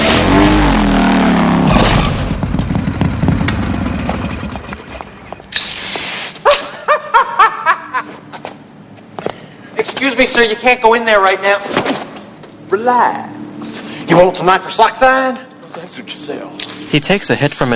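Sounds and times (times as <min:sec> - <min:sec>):
motorcycle engine roaring: 0:00.0 - 0:05.5
motorcycle crashing into a wall: 0:01.3 - 0:04.9
laughter: 0:06.5 - 0:08.2
speech: 0:10.2 - 0:12.0, 0:12.7 - 0:13.4, 0:14.1 - 0:17.7.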